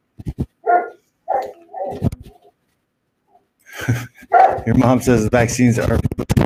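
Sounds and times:
dog barking for attention: 0.6 - 2.5, 4.3 - 4.7
dog whining: 0.6 - 2.6
speech: 4.7 - 6.3.

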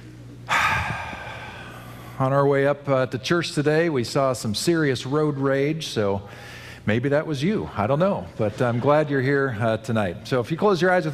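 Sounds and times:
deep breath during a pause at a Christmas Eve church service: 0.5 - 2.2, 6.2 - 6.9
speech: 2.2 - 11.1.

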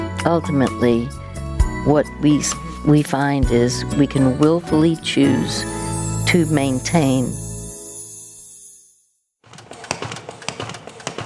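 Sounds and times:
speech: 0.2 - 1.2, 1.8 - 7.4
sustained tone: 5.0 - 8.5.

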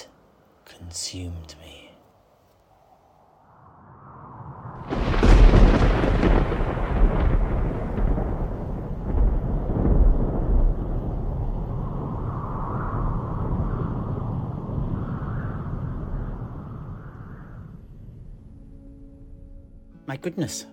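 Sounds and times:
speech: 0.9 - 1.8, 20.2 - 20.7
raging sandstorm with rushing wind: 2.7 - 18.9.

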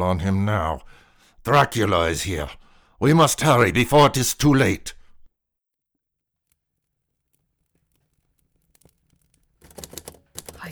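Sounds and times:
speech: 0.0 - 5.0
typewriter keys clacking in sharp uneven strikes: 9.6 - 10.7.

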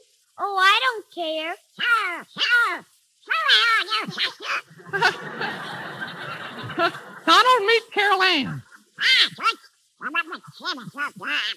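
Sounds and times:
rough hissing wash of noise: 0.0 - 11.5
speech: 0.4 - 6.1, 6.8 - 11.5
cartoon duck voice squawking and quacking: 1.4 - 4.8, 7.3 - 11.5
laughter: 4.0 - 9.0.

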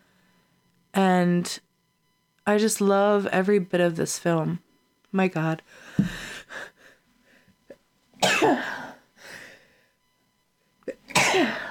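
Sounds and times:
speech: 1.2 - 1.7, 2.4 - 6.6
person sick with congestion coughing: 8.2 - 8.9, 10.9 - 11.6.

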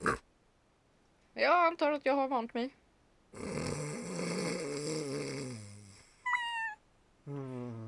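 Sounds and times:
speech: 1.4 - 3.6
person snoring with a raspy rumbling breath: 3.4 - 6.2, 7.2 - 7.8.

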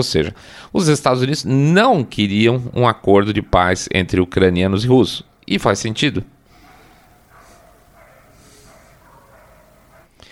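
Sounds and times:
speech: 0.0 - 6.4
low hum: 4.8 - 10.2
dogs barking at each other: 5.1 - 10.2.

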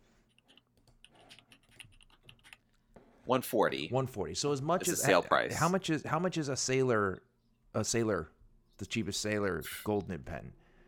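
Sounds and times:
typing on a computer keyboard: 0.3 - 2.6
speech: 3.3 - 10.6.

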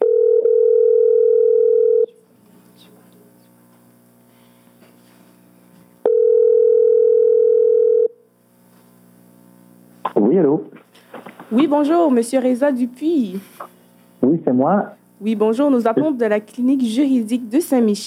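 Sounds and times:
telephone dial tone on a call line: 0.0 - 2.1, 6.1 - 8.2
speech: 11.5 - 18.0.

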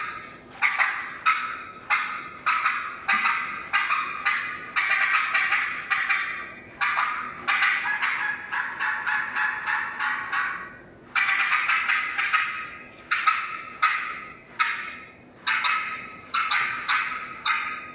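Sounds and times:
game call imitating an excited hen turkey cutting: 0.0 - 17.9.

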